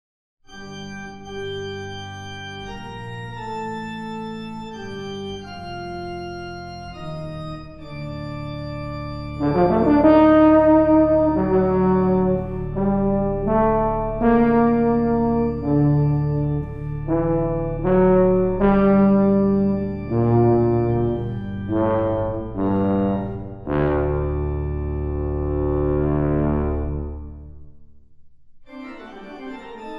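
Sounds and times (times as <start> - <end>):
organ in a choral fantasia: 0.5 - 27.6, 28.7 - 29.9
tuba in a choral fantasia: 0.5 - 28.0, 28.7 - 29.9.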